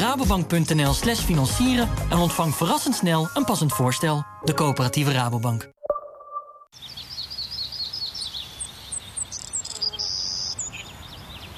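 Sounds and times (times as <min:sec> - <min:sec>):
speech: 0:00.1 - 0:05.8
birds whistling and chirping: 0:06.8 - 0:11.5.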